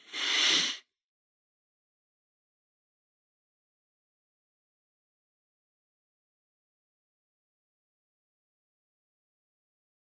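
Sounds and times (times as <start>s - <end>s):
person inhaling deeply during a breathing exercise: 0.0s - 0.8s.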